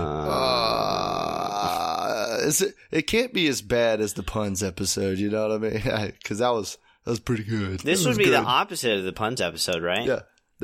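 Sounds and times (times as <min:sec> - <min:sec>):
person groaning: 0:00.0 - 0:02.6, 0:07.8 - 0:08.5
speech: 0:02.4 - 0:10.6.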